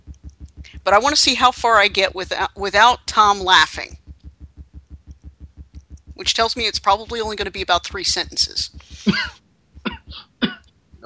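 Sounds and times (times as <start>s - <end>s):
speech: 0.7s - 4.0s, 6.2s - 9.4s
person coughing from a tickle in the throat: 9.0s - 10.6s.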